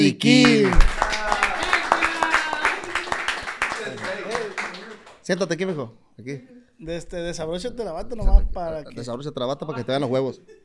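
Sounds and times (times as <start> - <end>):
speech: 0.0 - 0.9, 5.3 - 10.6
excited voices and cheers: 0.2 - 4.6
audience clapping: 0.2 - 5.9.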